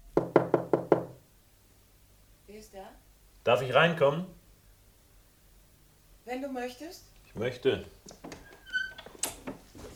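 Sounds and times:
firm knocks on a door in a corridor: 0.1s - 1.2s
speech: 2.6s - 4.4s, 6.3s - 8.2s.

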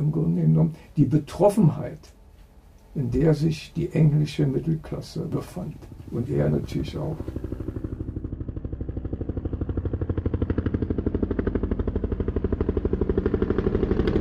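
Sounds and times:
speech: 0.0s - 2.2s, 2.9s - 7.5s
helicopter hovering overhead, rotor thumping: 4.8s - 14.1s.

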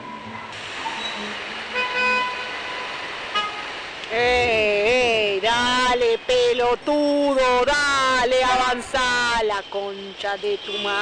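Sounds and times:
dense wash of engine and road noise in a traffic jam: 0.0s - 10.9s
car horns honking in a traffic jam: 0.8s - 3.8s, 9.6s - 10.9s
speech: 5.6s - 10.9s.

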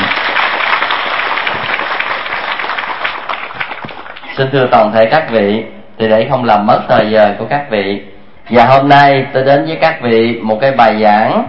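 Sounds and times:
audience of Buddhist followers applauding at a talk: 0.0s - 4.3s
speech: 4.4s - 11.4s.

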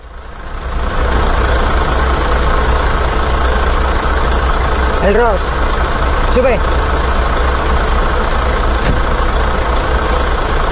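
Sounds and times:
truck engine idling as the truck arrives: 0.0s - 10.7s
speech: 5.0s - 5.6s, 6.3s - 6.8s.

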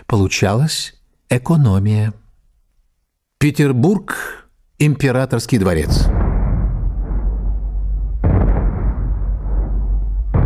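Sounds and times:
speech: 0.1s - 2.2s, 3.4s - 6.2s
naval squadron twenty-one gun cannon salute over Saint Petersburg: 5.8s - 10.4s.

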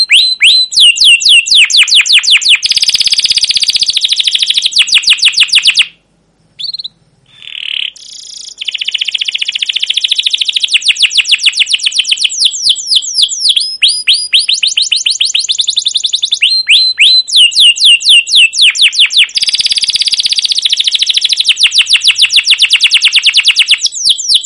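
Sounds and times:
canary in full song with rolling trills and whistles: 0.0s - 6.0s, 6.6s - 24.4s.

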